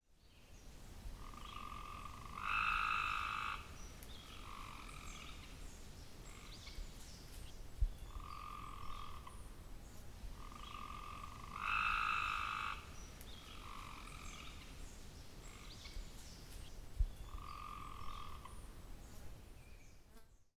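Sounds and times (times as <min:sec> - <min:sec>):
Cope's gray tree frog calling: 0:01.2 - 0:05.6, 0:06.3 - 0:06.7, 0:08.0 - 0:09.6, 0:10.3 - 0:14.8, 0:15.4 - 0:16.0, 0:17.2 - 0:18.7.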